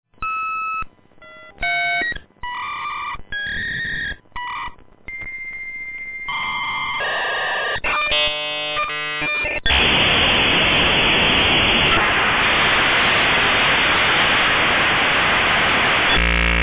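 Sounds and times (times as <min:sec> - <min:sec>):
Rockwell Conexant V90 modems: 0:00.2 - 0:16.6.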